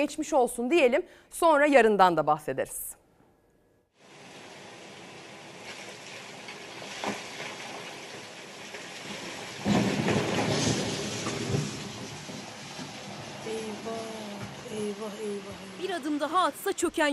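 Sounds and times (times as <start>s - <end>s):
speech: 0.0s - 3.0s, 14.8s - 17.1s
heavy rain downpour: 4.0s - 17.1s.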